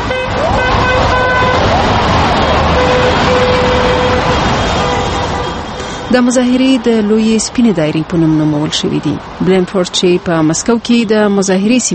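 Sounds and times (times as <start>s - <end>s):
car horns honking in support of protesters on snowy streets: 0.0s - 6.2s
dense continuous traffic noise on snowy streets: 0.0s - 11.9s
speech: 6.1s - 11.9s.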